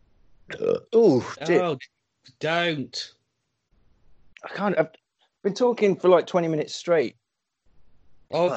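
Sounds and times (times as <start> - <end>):
throaty gravelly burp: 0.5 - 1.6
speech: 0.5 - 3.2, 4.4 - 7.2, 8.3 - 8.5.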